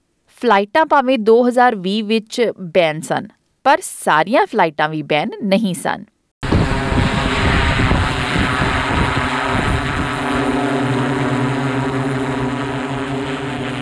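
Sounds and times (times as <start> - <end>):
speech: 0.4 - 6.1
drones flying overhead: 6.4 - 13.7.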